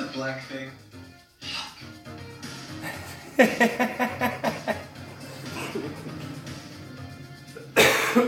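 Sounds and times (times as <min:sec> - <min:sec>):
speech: 0:00.1 - 0:01.0, 0:03.4 - 0:04.8
laughter: 0:02.8 - 0:06.6
person coughing: 0:05.4 - 0:05.9, 0:07.6 - 0:08.2.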